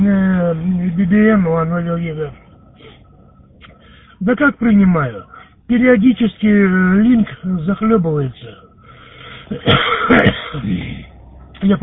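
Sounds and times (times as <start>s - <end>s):
speech: 1.1s - 2.5s, 4.2s - 8.6s, 9.5s - 11.8s
man coughing during an amateur radio contact over a link connection: 9.4s - 11.0s.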